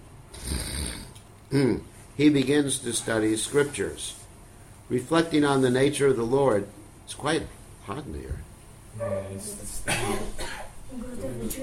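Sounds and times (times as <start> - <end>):
speech: 1.5 - 4.2, 4.9 - 11.6
person coughing: 9.8 - 10.8.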